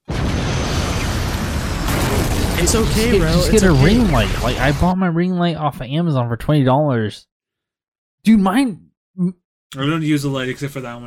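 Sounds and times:
explosion sound effect: 0.0 - 5.0
speech: 2.6 - 7.3, 8.2 - 11.0.

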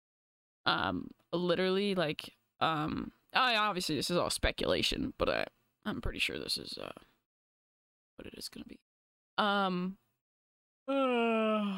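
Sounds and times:
speech: 0.7 - 7.1, 8.2 - 10.0, 10.9 - 11.7
person yawning with a voiced groan: 10.9 - 11.7.

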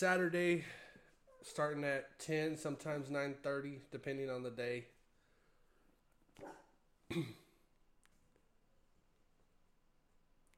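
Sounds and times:
speech: 0.0 - 0.8, 1.4 - 5.0, 6.4 - 7.4
dog barking: 6.4 - 6.8.

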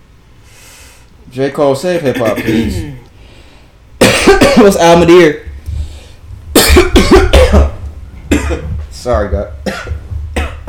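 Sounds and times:
speech: 1.3 - 3.0, 4.5 - 5.5, 9.0 - 9.9
person coughing: 2.0 - 3.0, 4.0 - 4.8, 6.6 - 8.8, 9.6 - 10.6.

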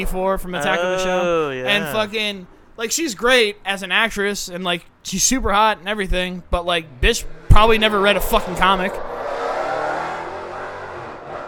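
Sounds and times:
speech: 0.0 - 9.1
Camaro car engine revving outside: 6.6 - 11.4.

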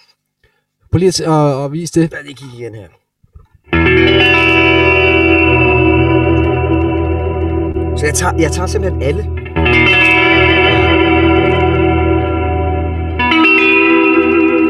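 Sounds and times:
speech: 0.9 - 3.0, 8.0 - 10.0
guitar played through heavy effects ringing in bright twangy chords: 3.6 - 14.6.

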